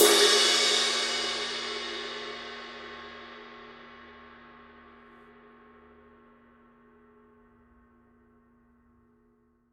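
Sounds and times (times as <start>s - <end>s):
Paiste Signature 21 Dark Energy Ride Mark II cymbal struck on edge: 0.0s - 4.4s.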